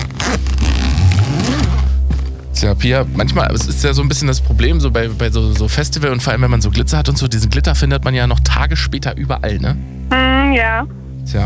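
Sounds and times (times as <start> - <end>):
zipper being carefully opened: 0.0 - 2.0
speech: 2.6 - 11.4.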